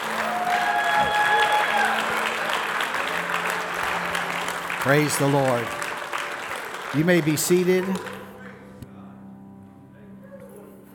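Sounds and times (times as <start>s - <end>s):
congregation clapping and cheering: 0.0s - 8.8s
congregation shouts and whoops: 0.1s - 2.2s
speech: 4.8s - 5.8s, 6.9s - 8.2s.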